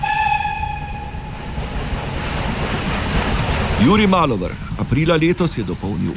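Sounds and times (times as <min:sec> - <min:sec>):
horn-like harmonic tone: 0:00.0 - 0:01.3
train rumbling past with rattling railway wagons: 0:01.3 - 0:06.1
speech: 0:03.8 - 0:06.1.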